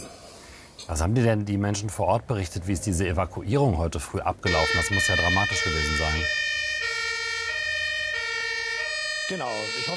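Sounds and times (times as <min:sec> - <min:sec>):
low traffic rumble of a heavy truck and several cars: 0:00.0 - 0:09.9
speech: 0:00.9 - 0:06.9, 0:09.3 - 0:09.9
two-tone siren of a passing fire engine at an evacuation scene: 0:04.5 - 0:09.9.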